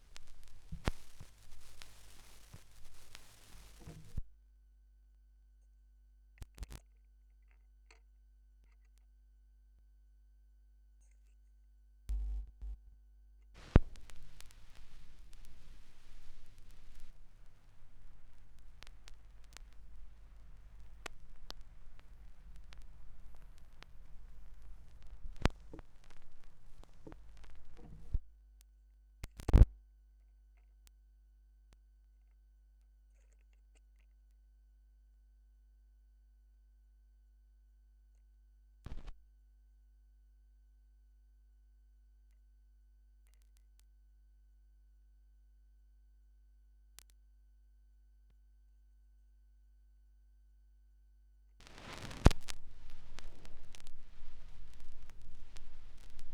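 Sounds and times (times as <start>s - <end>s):
45 RPM vinyl record noise: 0.0s - 4.3s, 12.1s - 12.8s, 13.6s - 28.3s, 29.2s - 29.7s, 38.9s - 39.2s, 51.6s - 56.3s.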